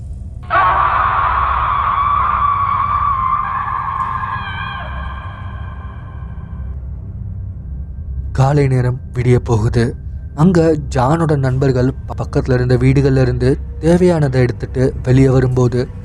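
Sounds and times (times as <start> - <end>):
low rumbling background: 0.0 - 16.0
man screaming in terror: 0.5 - 6.1
speech: 8.5 - 16.0.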